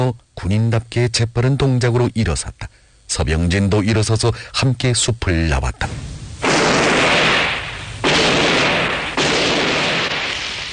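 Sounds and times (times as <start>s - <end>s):
speech: 0.0s - 6.6s
old-fashioned gunfire: 6.4s - 10.7s.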